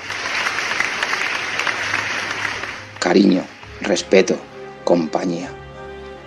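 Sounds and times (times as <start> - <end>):
group of students applauding: 0.0 - 4.5
speech: 3.0 - 5.6.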